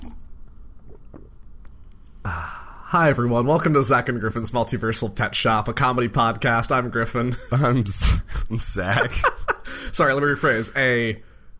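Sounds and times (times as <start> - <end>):
person sipping a drink: 0.0 - 2.5
person swallowing: 0.0 - 2.5
speech: 2.3 - 11.3.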